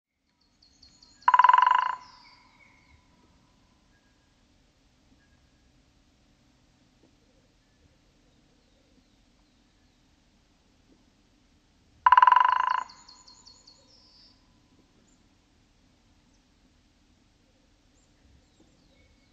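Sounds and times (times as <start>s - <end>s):
white-backed woodpecker gyk call: 0.8s - 3.0s, 12.1s - 13.8s
white-backed woodpecker short fast drumming: 1.0s - 2.3s, 12.0s - 13.5s.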